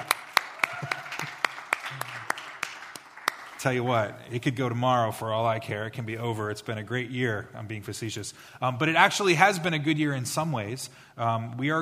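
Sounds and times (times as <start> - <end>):
audience clapping: 0.0 - 4.1
speech: 3.6 - 11.7.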